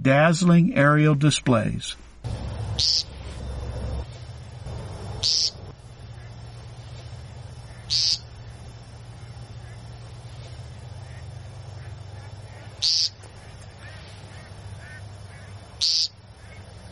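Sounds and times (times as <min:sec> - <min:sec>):
speech: 0:00.0 - 0:03.1, 0:05.2 - 0:05.6
steady low hum: 0:00.0 - 0:16.9
courting male bird giving loud nasal peep calls: 0:02.3 - 0:16.9.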